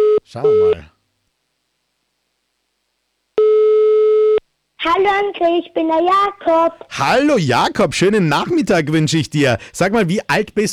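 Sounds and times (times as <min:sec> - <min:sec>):
speech: 0:00.3 - 0:00.9, 0:04.8 - 0:10.7
telephone line tone as a call is placed: 0:03.4 - 0:04.4.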